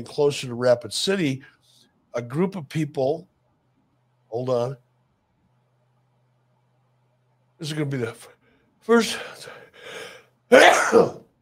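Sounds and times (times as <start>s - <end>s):
speech: 0.0s - 3.3s, 4.3s - 4.8s, 7.6s - 11.2s
person sneezing: 9.9s - 11.3s.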